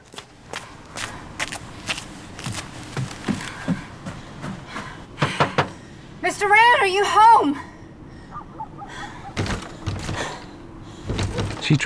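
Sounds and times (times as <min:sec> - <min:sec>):
footsteps running up onto a wooden porch: 0:00.0 - 0:05.4, 0:09.3 - 0:11.8
speech: 0:06.4 - 0:07.7, 0:11.7 - 0:11.8.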